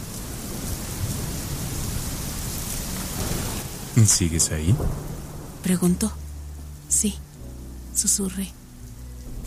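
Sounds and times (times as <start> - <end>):
steady rain pouring down: 0.0 - 9.4
speech: 4.0 - 6.2, 7.0 - 7.2, 8.0 - 8.6.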